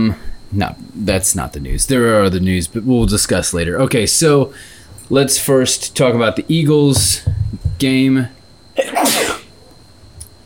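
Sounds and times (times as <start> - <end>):
speech: 0.0 - 8.4
person sneezing: 8.8 - 9.5.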